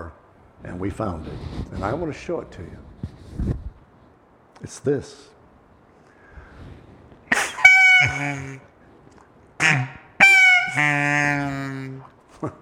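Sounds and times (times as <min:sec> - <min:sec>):
speech: 0:00.6 - 0:03.6, 0:04.6 - 0:05.4, 0:08.0 - 0:08.7, 0:09.6 - 0:10.0, 0:10.8 - 0:12.6
goose call blown, breathy rush and nasal honk: 0:07.3 - 0:08.7, 0:09.6 - 0:12.1.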